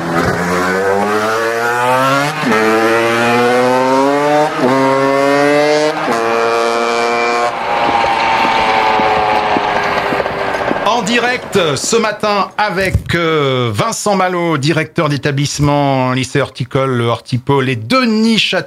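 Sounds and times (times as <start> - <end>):
small moped engine revving and pulling away: 0.0 - 12.8
speech: 11.2 - 18.6.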